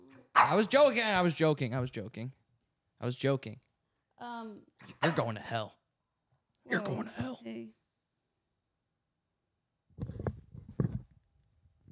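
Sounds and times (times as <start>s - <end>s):
dog barking and yowling: 0.3s - 0.7s
speech: 0.4s - 2.4s, 3.0s - 5.8s, 6.7s - 7.8s.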